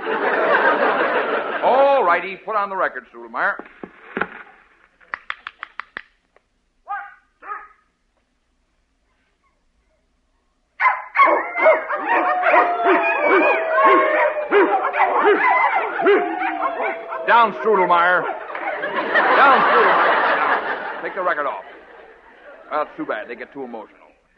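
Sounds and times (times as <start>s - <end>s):
laughter: 0.0s - 2.3s, 12.0s - 23.9s
speech: 2.1s - 4.4s, 17.4s - 18.4s, 21.0s - 21.8s, 22.7s - 24.0s
several excited dogs barking: 6.9s - 7.8s, 10.8s - 20.6s
several dogs whining: 10.8s - 18.9s
several dogs howling: 10.8s - 20.3s.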